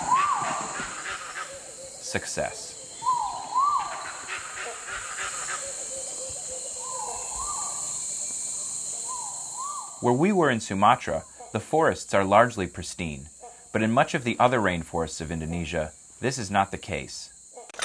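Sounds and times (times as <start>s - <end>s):
gibbon rising whooping calls in Sumatra, Indonesia: 0.0s - 2.1s, 2.8s - 7.8s, 9.0s - 10.0s
high buzz of rainforest insects in Sumatra, Indonesia: 0.0s - 17.8s
speech: 2.1s - 2.7s, 10.0s - 17.3s.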